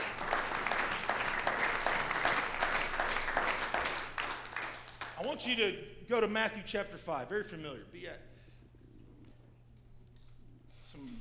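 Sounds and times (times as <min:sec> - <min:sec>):
audience clapping in praise: 0:00.0 - 0:05.5
speech: 0:05.4 - 0:08.3.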